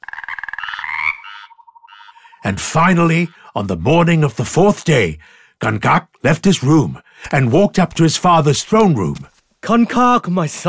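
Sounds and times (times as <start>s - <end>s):
toads croaking in a rapid pulsing trill: 0.0s - 3.6s
speech: 2.5s - 10.6s.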